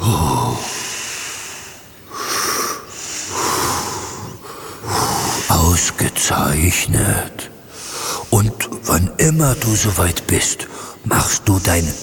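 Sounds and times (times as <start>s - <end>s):
slow calm breathing in and out: 0.0s - 5.9s, 7.6s - 8.8s, 10.6s - 11.1s
speech: 5.8s - 7.5s, 8.3s - 12.0s.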